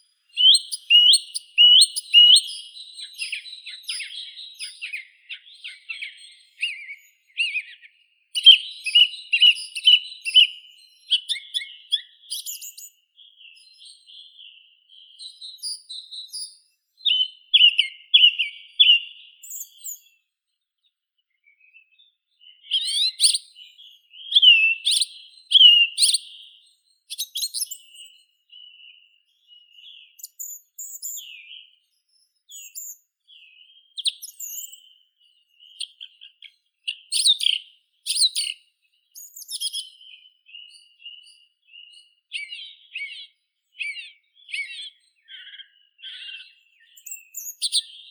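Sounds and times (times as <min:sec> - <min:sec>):
song thrush Turdus philomelos singing: 0:00.0 - 0:20.3, 0:21.2 - 0:48.0.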